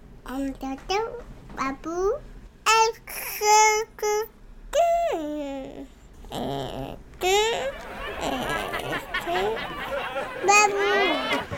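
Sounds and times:
speech: 0.3s - 11.5s
baby babbling in sing-song baby talk: 2.8s - 9.6s
laughter: 7.4s - 11.5s.

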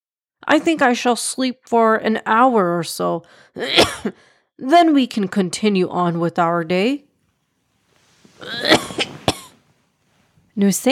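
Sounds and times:
speech: 0.5s - 7.0s, 8.4s - 8.7s, 10.6s - 10.9s
man lying on a bed coughing raspily: 3.6s - 4.2s, 8.5s - 9.6s.

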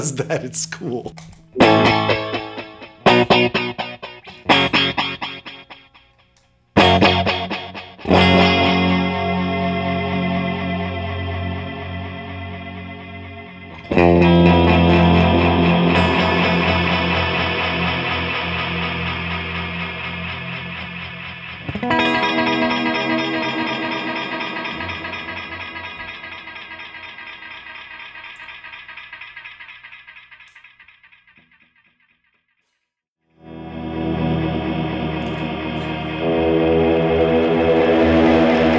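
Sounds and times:
speech: 0.0s - 2.2s, 3.4s - 3.8s
electric guitar played through a space echo pedal: 0.0s - 6.0s, 6.8s - 27.9s, 33.4s - 38.7s.

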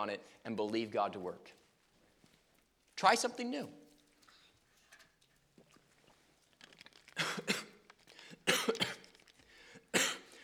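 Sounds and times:
speech: 0.0s - 1.6s, 3.0s - 3.8s, 7.4s - 7.7s
breaths: 0.2s - 0.5s, 4.2s - 4.9s, 8.0s - 8.5s, 9.1s - 10.4s
person coughing after swallowing something the wrong way: 7.2s - 7.8s, 8.4s - 9.1s, 9.9s - 10.3s.

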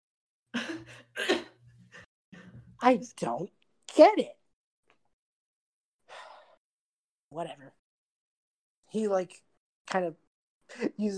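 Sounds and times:
person coughing harshly: 0.6s - 1.6s
speech: 2.8s - 4.4s, 7.3s - 7.8s, 8.9s - 11.1s.

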